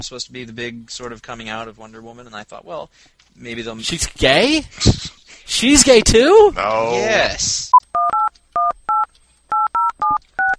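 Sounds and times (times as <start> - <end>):
speech: 0.0 - 8.0
telephone keypad tones dialing an outgoing call: 7.9 - 10.5.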